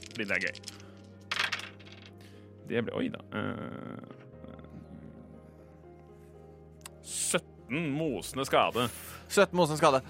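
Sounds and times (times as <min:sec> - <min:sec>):
dice rattling and clattering across a hard surface: 0:00.0 - 0:02.2
speech: 0:00.2 - 0:00.8, 0:02.7 - 0:04.3, 0:07.1 - 0:10.0.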